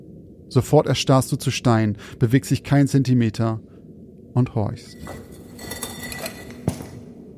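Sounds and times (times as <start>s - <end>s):
speech: 0.5s - 3.7s, 4.4s - 5.8s
glass bottle shattering against a wall: 5.0s - 7.0s.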